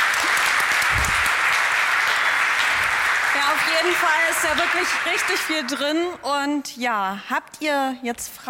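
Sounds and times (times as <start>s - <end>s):
audience applause: 0.0s - 6.2s
speech: 3.7s - 8.4s.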